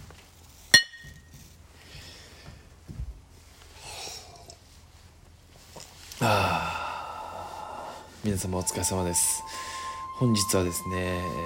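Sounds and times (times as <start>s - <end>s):
glasses clinking in a toast with shochu: 0.8s - 1.3s
faint breathing: 1.8s - 2.7s, 6.2s - 8.4s, 9.4s - 10.2s
speech: 6.2s - 6.5s, 8.2s - 11.4s.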